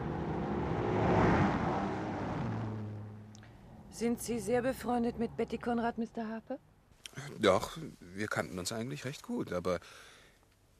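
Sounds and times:
car approaching and passing: 0:00.0 - 0:05.8
speech: 0:04.0 - 0:10.1.

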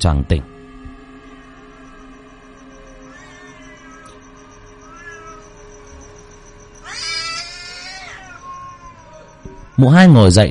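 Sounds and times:
speech: 0:00.0 - 0:00.5, 0:09.8 - 0:10.4
faint tonal sounds: 0:00.0 - 0:10.4
black cat meowing: 0:03.1 - 0:04.2, 0:04.8 - 0:05.6, 0:06.8 - 0:10.2.

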